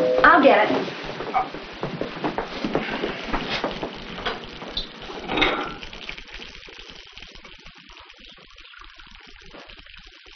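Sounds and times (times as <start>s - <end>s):
speech: 0.2s - 1.5s
coffee pouring into a cup in a restaurant: 1.8s - 10.3s.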